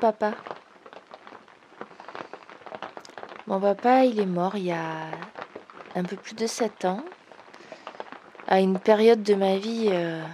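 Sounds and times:
speech: 0.0 - 0.5, 3.5 - 5.4, 6.0 - 7.1, 8.5 - 10.3
steady rain falling outside: 0.0 - 10.3.

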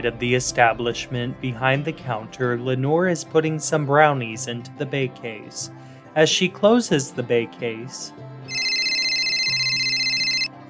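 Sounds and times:
speech: 0.0 - 8.3
cell phone ringing from an apron pocket: 8.5 - 10.6.

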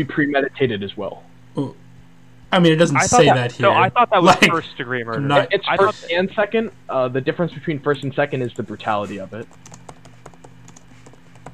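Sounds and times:
speech: 0.0 - 1.8, 2.5 - 9.8
low hum: 0.0 - 11.5
quick uneven keystrokes on a computer keyboard: 9.4 - 11.5.

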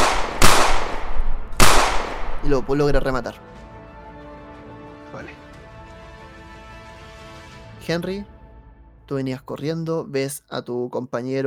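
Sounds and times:
gunshots: 0.0 - 2.7
speech: 2.4 - 3.5, 5.1 - 5.4, 7.8 - 8.4, 9.1 - 11.4.

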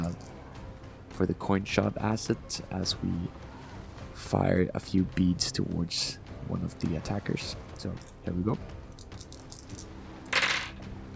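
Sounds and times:
speech: 1.2 - 3.5, 4.2 - 8.8
dice tumbling across a hard surface: 8.9 - 10.8.

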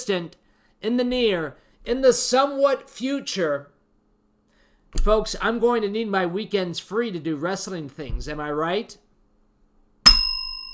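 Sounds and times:
speech: 0.0 - 3.7, 4.9 - 9.0
bell ringing: 10.1 - 10.7.

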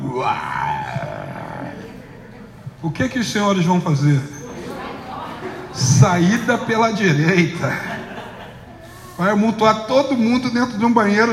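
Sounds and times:
person imitating a lion's roar: 0.0 - 2.1
speech: 0.2 - 1.1, 2.8 - 4.4, 5.8 - 7.9, 9.2 - 11.3
laughter: 4.4 - 9.4.

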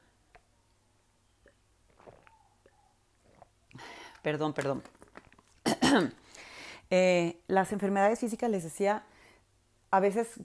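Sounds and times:
gulping swallow of water: 1.4 - 3.7
small wet mouth clicks: 1.4 - 4.2
soft sips of water: 1.4 - 6.8
speech: 4.2 - 5.0, 5.9 - 9.1, 9.9 - 10.4.

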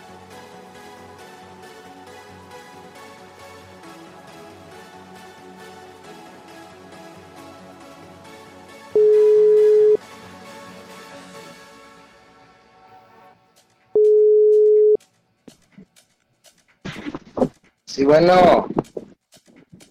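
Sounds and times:
telephone ringback tone while placing a call: 9.0 - 10.0, 14.0 - 15.0
speech: 18.0 - 18.7.

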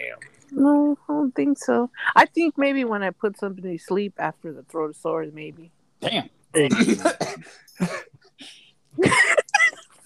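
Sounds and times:
speech: 0.2 - 9.3
coughing: 6.1 - 8.3.

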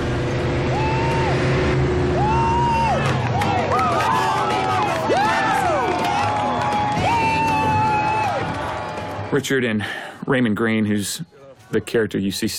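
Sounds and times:
race car engine revving and pulling away: 0.0 - 5.8
crowd cheering: 0.5 - 9.8
speech: 9.4 - 12.5.

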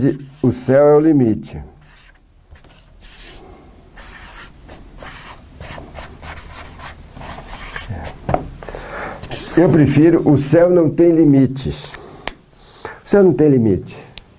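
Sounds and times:
pen scratching across paper: 0.0 - 1.2, 1.8 - 3.4, 4.0 - 8.2, 9.2 - 9.8
speech: 0.0 - 1.7, 9.6 - 12.0, 13.1 - 14.0.

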